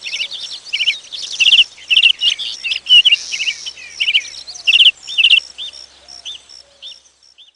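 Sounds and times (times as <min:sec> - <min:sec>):
birdsong twittering and chirps: 0:00.0 - 0:07.5.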